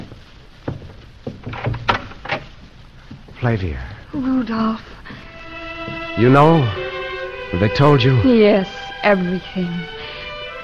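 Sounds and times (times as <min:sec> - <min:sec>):
wooden door of a castle music room opening with clunks and rattling handle: 0:00.7 - 0:02.6
speech: 0:03.4 - 0:04.9, 0:06.2 - 0:06.8, 0:07.5 - 0:10.0.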